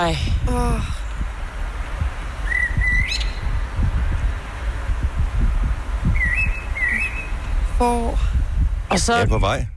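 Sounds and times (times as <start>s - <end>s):
speech: 0.0s - 1.0s, 7.8s - 8.3s, 8.9s - 9.7s
loud constant low rumbling noise: 0.0s - 9.7s
bird singing outdoors in short clear whistled phrases: 2.4s - 3.5s, 6.2s - 7.6s.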